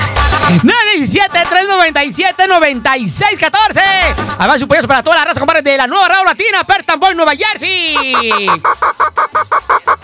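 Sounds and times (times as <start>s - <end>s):
speech: 0.5s - 9.8s
goose honking sound effect: 7.6s - 10.0s.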